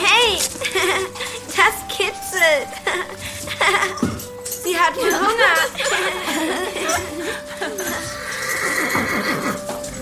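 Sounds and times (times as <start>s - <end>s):
horse stamping its hooves: 0.0s - 10.0s
laughter: 0.4s - 4.3s, 4.9s - 9.8s
horse snorting: 7.3s - 9.9s
horse soft whinnying: 7.7s - 9.9s.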